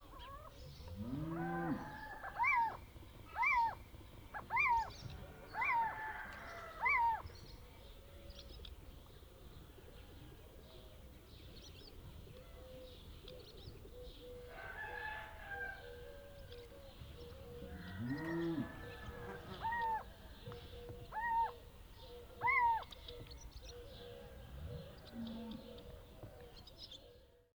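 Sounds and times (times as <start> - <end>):
aggressive animal song: 0.0 - 27.5.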